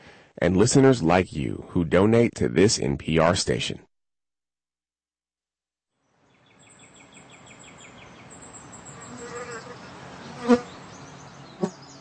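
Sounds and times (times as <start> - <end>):
speech: 0.4 - 3.9
flying insects buzzing: 8.6 - 11.9.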